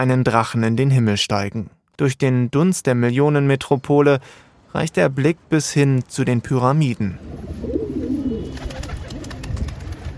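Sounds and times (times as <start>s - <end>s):
speech: 0.0s - 7.8s
light outdoor hiss: 4.2s - 4.5s
pigeons cooing: 7.2s - 10.1s.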